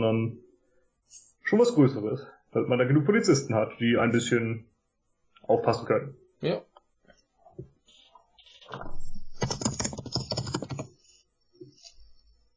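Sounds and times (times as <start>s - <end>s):
speech: 0.0s - 0.4s, 1.1s - 4.7s, 5.4s - 6.7s
loud typing on a computer keyboard: 9.4s - 11.0s.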